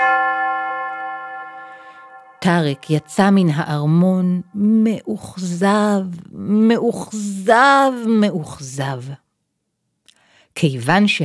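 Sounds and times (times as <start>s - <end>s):
large palace bell ringing at sunset: 0.0s - 4.1s
speech: 2.4s - 9.2s, 10.6s - 11.2s.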